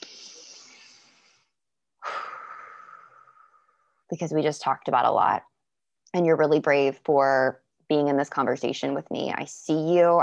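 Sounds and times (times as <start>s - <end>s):
deep slow breath: 0.0s - 4.0s
speech: 4.1s - 5.5s, 6.1s - 10.2s.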